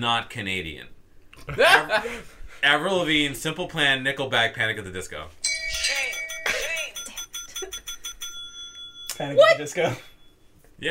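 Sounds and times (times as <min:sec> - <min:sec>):
speech: 0:00.0 - 0:05.4, 0:09.2 - 0:10.1
quiz buzzer bell ringing during a multiple-choice trivia game: 0:05.4 - 0:10.6.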